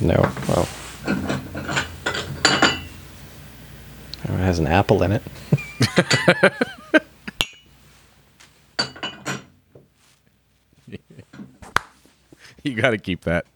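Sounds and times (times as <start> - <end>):
speech: 0.0 - 1.3, 4.5 - 6.8, 12.6 - 13.5
cups clinking together in a toast: 0.1 - 3.0, 5.3 - 7.8, 8.8 - 9.6
laughter: 5.4 - 7.4, 10.8 - 11.4.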